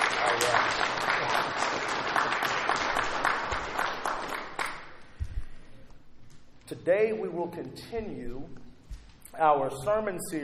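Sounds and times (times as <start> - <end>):
room full of people clapping: 0.0 - 5.1
speech: 6.8 - 8.6, 9.4 - 10.4.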